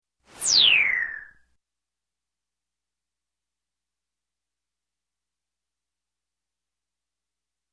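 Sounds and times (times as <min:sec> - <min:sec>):
electronic space slide: 0:00.3 - 0:01.3.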